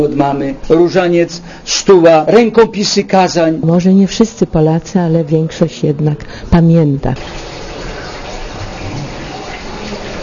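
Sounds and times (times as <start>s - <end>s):
speech: 0.0s - 7.5s
rushing water: 7.2s - 10.2s.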